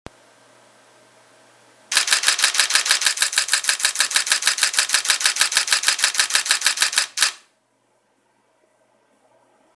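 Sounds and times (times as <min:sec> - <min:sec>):
Nikon D750 camera shutter burst: 0:01.9 - 0:07.5.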